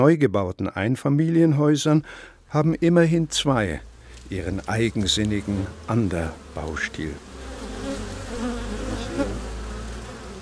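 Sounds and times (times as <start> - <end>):
speech: 0.0 - 7.3
many honeybees buzzing from a wooden hut: 3.0 - 10.4.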